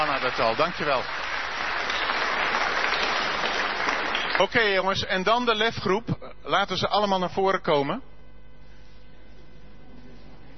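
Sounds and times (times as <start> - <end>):
crowd applauding at an event honouring young people: 0.0 - 4.8
speech: 0.2 - 1.2, 4.4 - 8.1.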